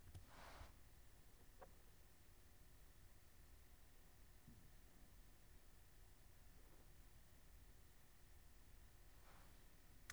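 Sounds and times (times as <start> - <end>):
background noise: 0.0 - 10.1.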